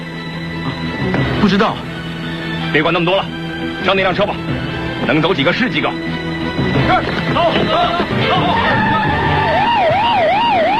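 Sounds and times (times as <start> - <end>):
speech: 1.0 - 2.0, 2.7 - 8.9
several police car sirens wailing: 6.7 - 10.7.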